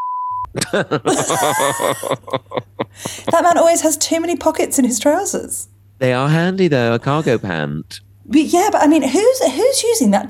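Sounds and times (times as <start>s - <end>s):
censor bleep over a spoken name: 0.0s - 0.5s
laughter: 0.5s - 3.8s, 7.0s - 7.7s
speech: 0.5s - 10.2s.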